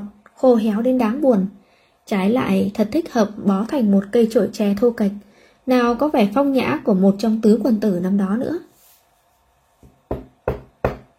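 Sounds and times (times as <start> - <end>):
speech: 0.4 - 8.7
soft knocking on a door: 9.8 - 11.1.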